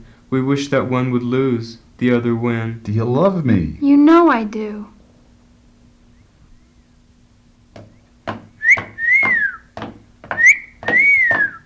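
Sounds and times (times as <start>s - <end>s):
speech: 0.3s - 4.9s
person whistling a two-part call to get attention: 8.6s - 9.7s, 10.3s - 11.6s.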